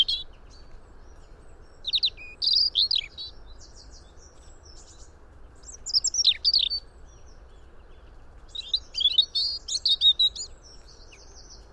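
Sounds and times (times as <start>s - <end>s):
European robin Erithacus rubecula singing: 0.0s - 11.7s
faint constant hum: 0.0s - 11.7s.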